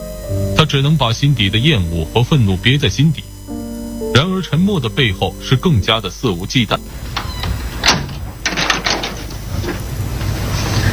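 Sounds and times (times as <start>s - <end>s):
steady low hum: 0.0s - 10.9s
speech: 0.7s - 3.3s, 4.1s - 7.0s
door shutting with a firm thud: 5.1s - 10.9s
latch-like clicks and rattles: 7.0s - 9.8s.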